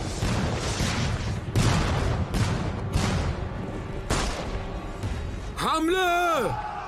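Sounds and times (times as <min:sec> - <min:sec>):
loud dense volley of gunfire: 0:00.0 - 0:04.6
speech: 0:05.8 - 0:06.7.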